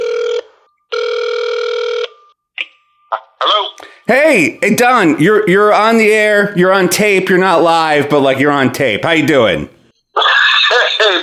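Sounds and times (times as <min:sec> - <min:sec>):
phone ringback tone: 0:00.0 - 0:04.0
speech: 0:04.1 - 0:09.7, 0:11.0 - 0:11.2.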